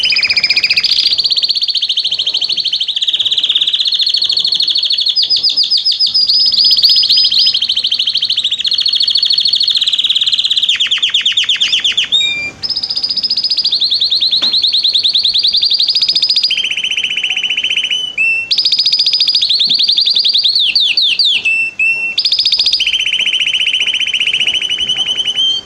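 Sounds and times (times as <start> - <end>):
male Belgian canary singing trills: 0.0 - 25.6.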